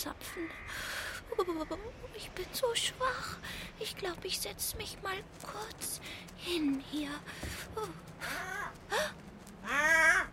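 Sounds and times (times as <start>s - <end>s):
speech: 0.0s - 10.3s
crow cawing: 9.6s - 10.3s.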